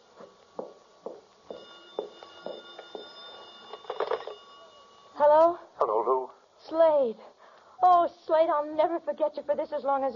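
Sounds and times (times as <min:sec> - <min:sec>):
telephone ringing: 0:01.5 - 0:05.3
speech: 0:07.0 - 0:07.4, 0:08.3 - 0:10.1.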